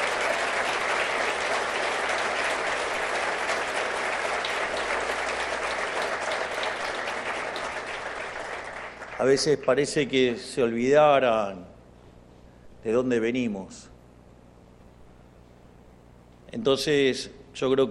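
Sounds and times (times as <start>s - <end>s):
large audience applause: 0.0s - 9.9s
speech: 9.2s - 11.7s, 12.8s - 13.9s, 16.6s - 17.8s.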